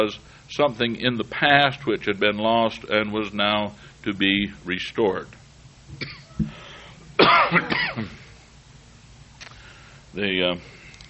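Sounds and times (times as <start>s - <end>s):
speech: 0.0s - 6.6s, 7.2s - 8.2s, 10.1s - 10.8s
harsh rasping coughs: 6.0s - 6.4s, 7.2s - 8.3s
gravelly throat clearing: 6.0s - 6.6s, 7.2s - 8.3s.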